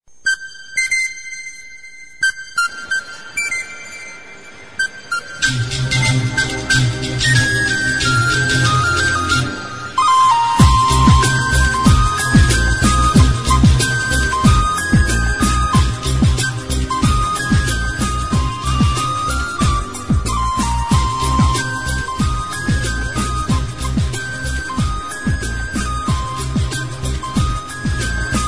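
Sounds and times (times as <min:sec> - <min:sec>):
Indian flute: 0:00.2 - 0:28.4.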